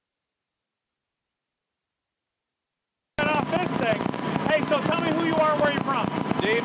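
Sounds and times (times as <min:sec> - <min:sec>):
loud exhaust popping from a 1932 Ford: 0:03.2 - 0:06.6
speech: 0:04.6 - 0:06.6.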